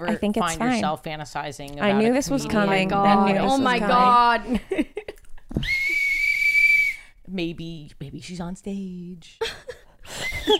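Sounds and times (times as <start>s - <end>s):
speech: 0.0s - 4.9s, 7.4s - 10.5s
whistle blast: 5.6s - 7.2s.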